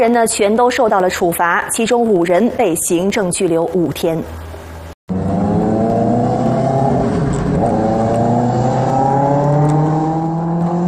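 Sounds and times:
speech: 0.0 - 4.5
two-wheeled electric vehicles roaring at night: 5.1 - 10.8.

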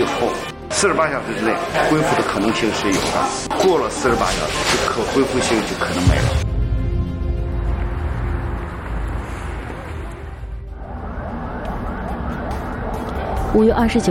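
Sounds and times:
speech: 0.0 - 6.5, 13.5 - 14.0
loud road traffic: 6.8 - 14.0
ambulance and police escort emergency sirens wailing: 7.6 - 14.0.

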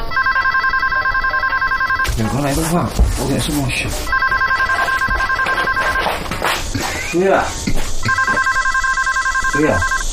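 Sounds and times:
telephone ringing: 0.1 - 2.4, 4.1 - 6.1, 8.0 - 10.1
speech: 2.2 - 4.2, 7.1 - 7.7, 9.6 - 9.9.

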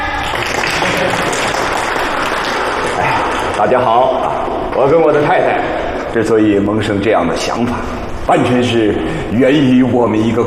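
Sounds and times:
crowd clapping to welcome a museum director: 0.0 - 4.9
speech: 3.6 - 10.4.

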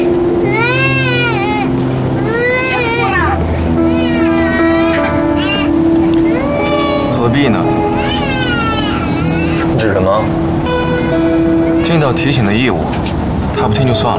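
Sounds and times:
low droning hum: 0.0 - 14.1
young child crying: 0.4 - 9.8
speech: 7.4 - 7.6, 12.0 - 14.1.

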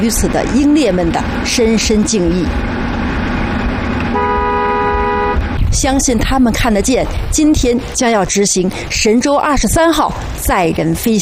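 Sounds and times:
speech: 0.0 - 3.1, 5.8 - 11.2
road traffic rumbling: 0.0 - 11.2
car horn blast in tribute at a revolutionary martyrs' cemetery: 4.0 - 5.5.

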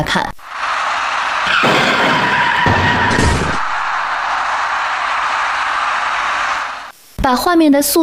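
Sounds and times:
speech: 0.0 - 0.4, 7.2 - 8.0
steady noise on a ring-road side road: 0.3 - 7.5
white minivan skidding into an electric bicycle rider at night: 0.6 - 4.2.

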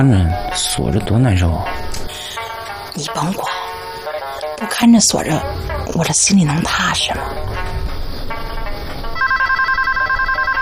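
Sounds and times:
speech: 0.0 - 2.4, 3.0 - 3.6, 4.6 - 7.8
telephone ringing with electronic warble: 9.2 - 10.6.

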